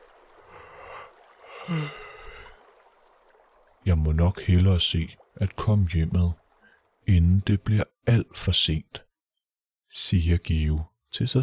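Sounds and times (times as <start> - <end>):
drawn-out breathy yawn with voiced groan: 1.5 - 2.5
speech: 1.7 - 2.0, 4.0 - 6.4, 7.1 - 9.0, 9.9 - 11.4.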